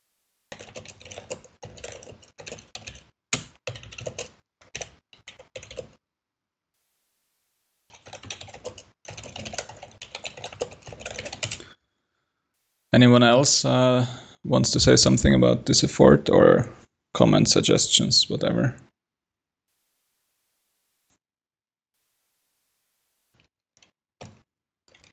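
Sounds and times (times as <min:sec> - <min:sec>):
typing on a computer keyboard: 0:00.5 - 0:06.0, 0:07.9 - 0:11.6, 0:23.8 - 0:25.1
speech: 0:13.0 - 0:18.9.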